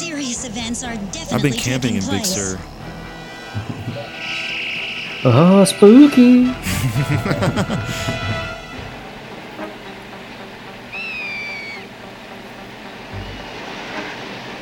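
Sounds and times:
speech: 0.4 - 2.9, 5.2 - 8.4
laughter: 1.3 - 2.6, 3.5 - 4.2, 6.6 - 8.8
high whistling bird call: 10.9 - 11.9, 13.2 - 13.6.

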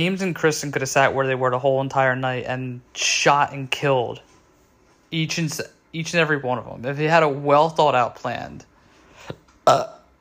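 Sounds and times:
speech: 0.0 - 4.3, 5.1 - 10.0
loud burp: 9.6 - 10.1.

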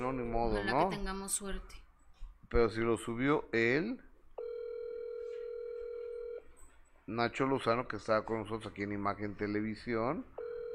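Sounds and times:
speech: 0.0 - 1.9, 2.5 - 4.1, 7.1 - 10.3
faint noise: 0.0 - 10.7
telephone dial tone while a call is placed: 4.4 - 6.4, 10.4 - 10.7.

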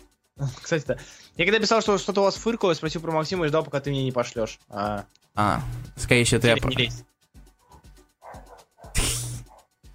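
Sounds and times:
speech: 0.4 - 7.1
dog barking at fireworks: 7.6 - 9.7.

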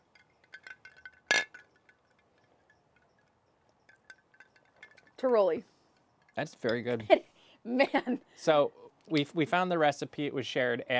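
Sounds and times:
drink glasses clinking in a toast: 0.0 - 7.1
speech: 5.2 - 5.7, 6.4 - 10.9.

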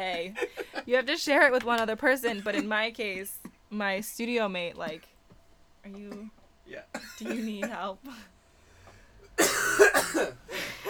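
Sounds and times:
speech: 0.0 - 5.1, 5.8 - 8.3, 9.6 - 10.8
harsh raspy coughing fit: 6.1 - 7.9, 9.2 - 10.8.

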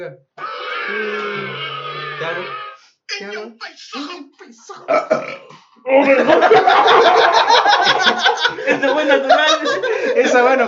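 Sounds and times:
speech: 0.0 - 10.6
long loud gravelly burp: 0.4 - 2.8, 4.8 - 5.6
laughter: 6.0 - 10.6.

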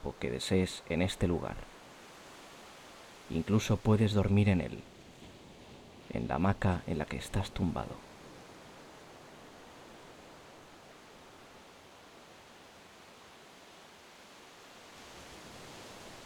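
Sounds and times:
speech: 0.0 - 1.7, 3.3 - 5.0, 6.1 - 8.1
ocean surf: 0.0 - 16.2.

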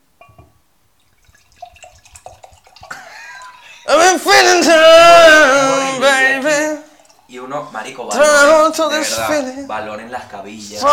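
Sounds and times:
drink poured from a bottle into a glass: 1.0 - 3.9, 6.2 - 8.6
speech: 4.2 - 10.9.

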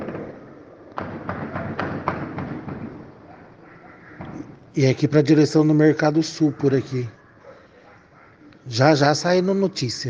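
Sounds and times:
machine gun fire from a shootout: 0.0 - 0.4, 1.0 - 3.1
steady outdoor noise: 0.0 - 10.0
speech: 4.8 - 7.2, 8.7 - 10.0.

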